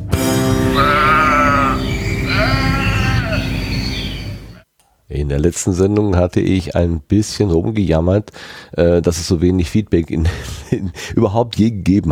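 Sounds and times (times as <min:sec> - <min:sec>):
short music jingle with staccato chords and warbling notes: 0:00.1 - 0:04.6
laughter: 0:00.7 - 0:04.6
speech: 0:05.3 - 0:12.1.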